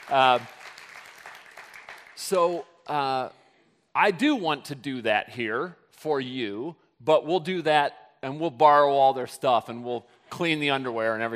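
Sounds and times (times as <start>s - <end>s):
church audience clapping: 0.0s - 2.5s
speech: 0.1s - 0.6s, 2.2s - 3.4s, 4.0s - 11.3s.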